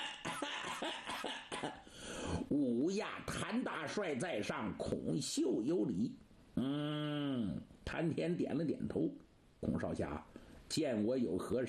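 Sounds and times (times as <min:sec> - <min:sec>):
person coughing dryly to clear throat: 0:00.0 - 0:01.9
speech: 0:01.6 - 0:01.9, 0:02.5 - 0:11.6.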